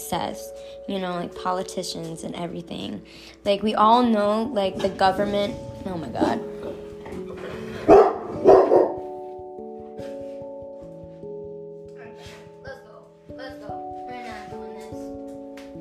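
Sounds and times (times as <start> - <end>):
speech: 0.1 - 6.8
dog barking: 7.8 - 9.2.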